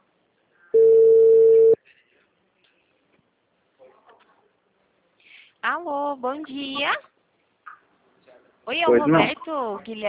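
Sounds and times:
telephone ringback tone on an outgoing call: 0:00.8 - 0:01.8
speech: 0:05.7 - 0:07.1, 0:08.7 - 0:10.0.

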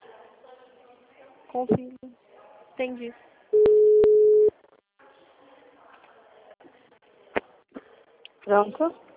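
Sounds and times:
speech: 0:01.5 - 0:02.2, 0:02.8 - 0:03.7, 0:08.5 - 0:09.1
phone busy tone after a dropped call: 0:03.6 - 0:04.5.

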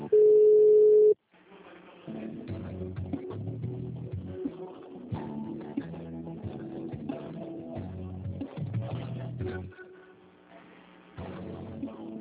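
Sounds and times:
steady telephone tone during a call transfer: 0:00.0 - 0:01.2.

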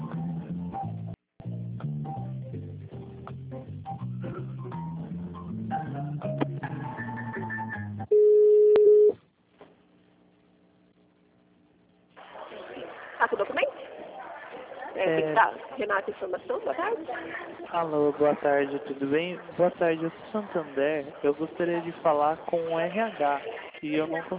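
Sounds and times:
telephone on-hold music during a call transfer: 0:00.0 - 0:08.1
loud steady telephone beep during a call transfer: 0:08.1 - 0:09.2
speech: 0:15.4 - 0:24.3.

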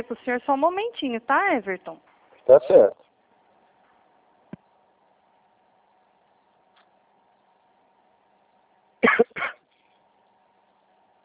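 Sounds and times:
speech: 0:00.0 - 0:03.0
faint hum: 0:00.0 - 0:11.2
throat-clearing coughs into the mic by a call-centre agent during a phone call: 0:09.0 - 0:09.7.

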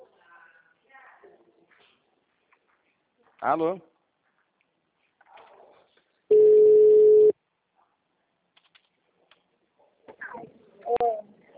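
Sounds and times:
speech: 0:03.4 - 0:03.9
telephone tone after a dropped phone call: 0:06.3 - 0:07.3.

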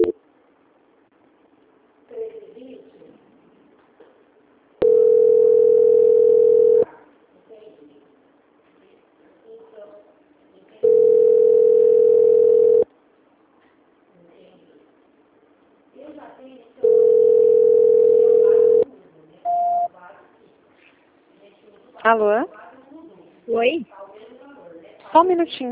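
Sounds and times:
telephone busy signal beeps during a call transfer: 0:04.8 - 0:06.8, 0:10.8 - 0:12.8, 0:16.8 - 0:18.8, 0:19.5 - 0:19.9
speech: 0:25.2 - 0:25.7.

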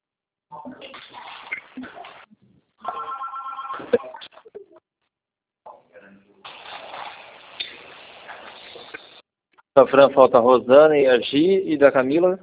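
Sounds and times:
speech: 0:00.6 - 0:01.0, 0:09.8 - 0:12.4
telephone ring tone while placing a call: 0:02.8 - 0:04.0.

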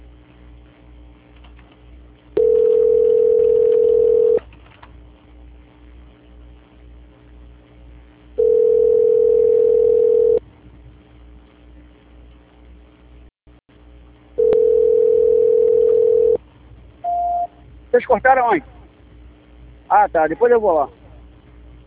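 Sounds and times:
faint low hum: 0:00.0 - 0:21.8
telephone line tones during a call transfer: 0:02.4 - 0:04.4, 0:08.4 - 0:10.4, 0:14.4 - 0:16.4, 0:17.0 - 0:17.6
speech: 0:18.1 - 0:18.7, 0:20.0 - 0:21.0.

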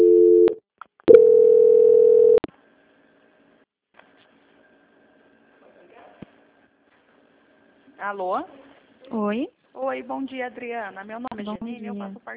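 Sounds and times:
telephone line tones during a bank call transfer: 0:00.0 - 0:02.5
speech: 0:08.1 - 0:12.3.

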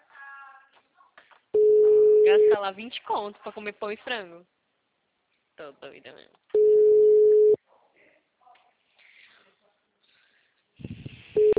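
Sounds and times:
telephone ringback tone on a call waiting to be answered: 0:01.6 - 0:02.6, 0:06.6 - 0:07.6, 0:11.4 - 0:11.5
speech: 0:02.3 - 0:04.6, 0:05.6 - 0:06.5.

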